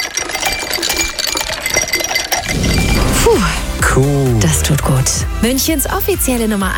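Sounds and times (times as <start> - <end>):
ice cubes clinking and rattling against a glass: 0.0 - 3.2
speech: 4.0 - 6.7.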